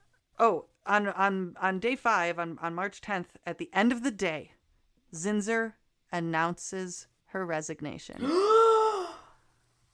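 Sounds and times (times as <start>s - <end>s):
speech: 0.4s - 8.6s
person gasping: 8.2s - 9.4s.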